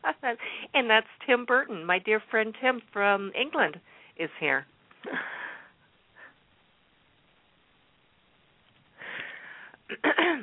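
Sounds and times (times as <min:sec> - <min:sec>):
speech: 0:00.2 - 0:05.4, 0:09.9 - 0:10.4
person clearing throat: 0:09.9 - 0:10.4.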